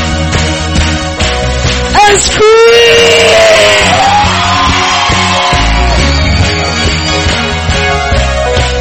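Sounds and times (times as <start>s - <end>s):
live music: 0.0s - 8.8s
large crowd screaming and shouting: 2.0s - 7.7s
steady pounding drumbeat: 3.2s - 7.4s.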